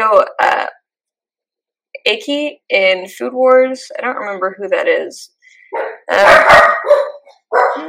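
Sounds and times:
speech: 2.0s - 6.7s
dog barking: 5.7s - 7.8s.

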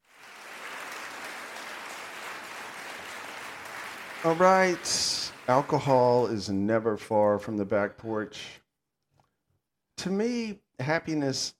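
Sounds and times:
crowd applauding: 0.0s - 6.4s
speech: 4.2s - 8.6s, 10.0s - 11.5s.

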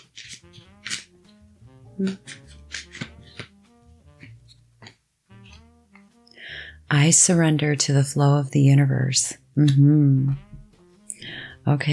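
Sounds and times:
deck of cards being shuffled to draw affirmations: 0.0s - 1.4s, 2.0s - 6.1s
soft tonal music: 0.0s - 11.9s
speech: 2.0s - 2.4s, 6.9s - 10.5s, 11.6s - 11.9s.

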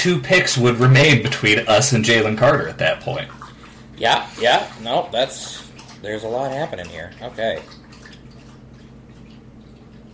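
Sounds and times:
speech: 0.0s - 3.4s, 4.0s - 7.8s
low hum: 0.0s - 10.1s
dog lapping up water in a room: 0.3s - 10.1s.

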